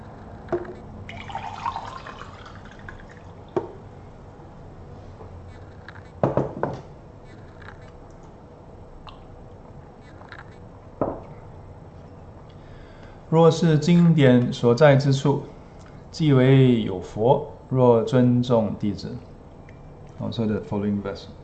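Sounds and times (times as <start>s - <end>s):
water pouring into a cup: 1.1s - 3.6s
speech: 13.3s - 15.5s, 16.2s - 19.3s, 20.2s - 21.4s.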